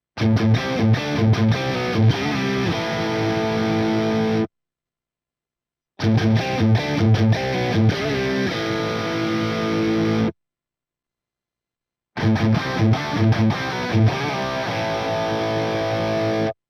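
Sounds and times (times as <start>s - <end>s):
crunchy electric guitar through humbucker pickup: 0.2s - 4.5s, 6.0s - 10.4s, 12.2s - 16.6s.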